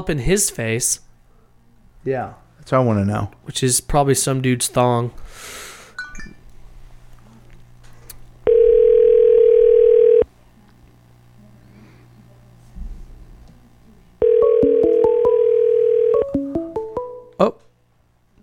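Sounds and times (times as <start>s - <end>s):
speech: 0.0s - 1.1s, 2.0s - 6.3s
telephone ringing tones as a call is placed: 8.4s - 10.3s, 14.2s - 17.2s.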